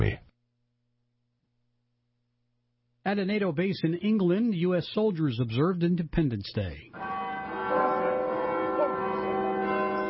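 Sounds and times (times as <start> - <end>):
speech: 3.1 - 7.2
cathedral bells chiming a national anthem: 7.0 - 10.0.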